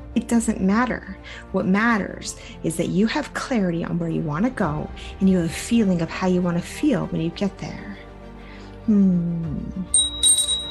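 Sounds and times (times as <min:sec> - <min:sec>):
speech: 0:00.2 - 0:08.0, 0:08.8 - 0:10.1
bright high-pitched bell ringing: 0:09.9 - 0:10.7.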